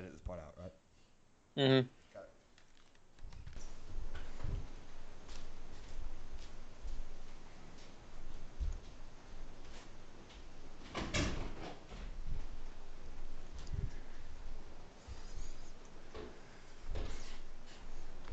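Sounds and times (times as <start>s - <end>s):
speech: 0.3s - 0.8s, 1.6s - 2.0s
shuffling and handling noises: 2.0s - 10.7s, 11.8s - 18.3s
low rustling movement: 3.2s - 10.8s, 11.5s - 18.3s.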